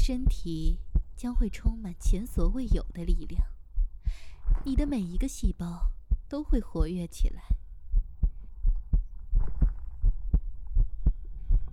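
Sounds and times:
faint low hum: 0.0s - 11.7s
person's steady heartbeat: 0.0s - 11.7s
speech: 0.1s - 7.6s.

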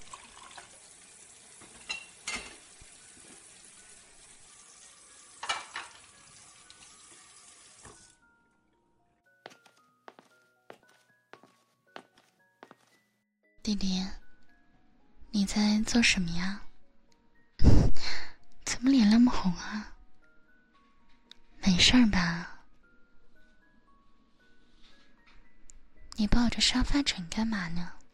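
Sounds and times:
water running from a tap: 0.0s - 8.2s
plates and bowls being stacked: 1.6s - 2.7s, 5.4s - 6.1s
dishes clinking and knocking: 1.6s - 2.8s, 5.4s - 6.2s
speech: 13.7s - 14.2s, 15.4s - 16.6s, 19.4s - 20.0s, 21.8s - 22.5s, 26.4s - 28.0s.

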